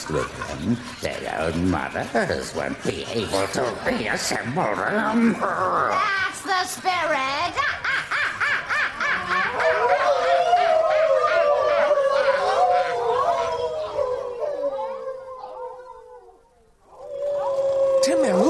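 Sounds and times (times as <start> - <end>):
speech: 0.1 - 7.8
laughter: 1.4 - 6.1, 7.3 - 15.0
pack of wolves howling and yipping: 9.4 - 18.4.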